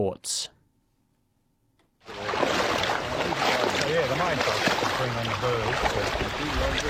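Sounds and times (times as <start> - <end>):
person wading through knee-high water: 2.0 - 6.8.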